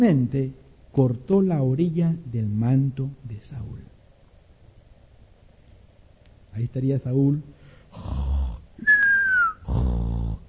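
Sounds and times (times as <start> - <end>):
speech: 0.0 - 3.9, 6.6 - 9.0, 9.7 - 10.4
voice mimicking a man snoring cartoon style: 7.9 - 8.8, 9.5 - 10.4
thin whistle sliding downward: 8.8 - 9.6.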